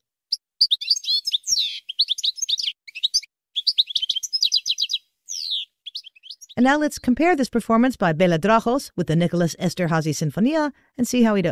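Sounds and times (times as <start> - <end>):
European goldfinch singing: 0.3 - 8.0
speech: 6.6 - 11.5.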